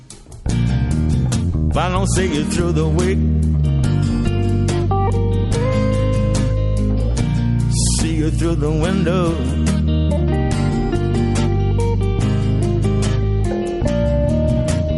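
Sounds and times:
slow Celtic ballad song: 0.5 - 14.9
speech: 1.8 - 3.5, 8.2 - 10.4.

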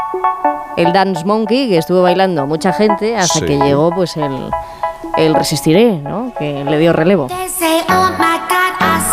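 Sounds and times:
speech: 0.2 - 8.4
pop song with bright buzzy synth chords on a quick beat: 7.3 - 9.1.

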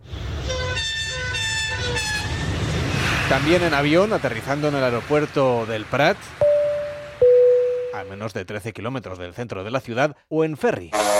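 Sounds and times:
steady rail rumble of a high-speed train: 0.0 - 8.2
high-speed train horn sounding short bright chords: 0.4 - 2.8, 10.9 - 11.1
speech: 3.3 - 6.4, 8.0 - 11.1.

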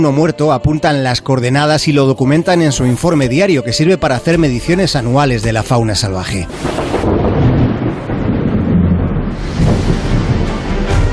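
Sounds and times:
speech: 0.0 - 7.5
deep thunder rumbling: 4.3 - 11.1
heavy rain pouring down: 6.2 - 11.1.

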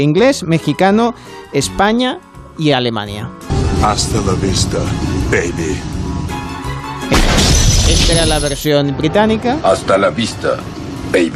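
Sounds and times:
speech: 0.0 - 6.0, 7.9 - 11.3
quiet tonal movie backdrop: 3.0 - 11.3
film gunshot sound effect: 7.1 - 8.4.

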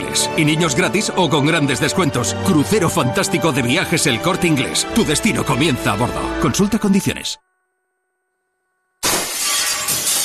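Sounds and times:
speech: 0.2 - 7.5
broken glass shards rattling and tinkling: 9.0 - 10.2
glass shattering: 9.0 - 10.2.

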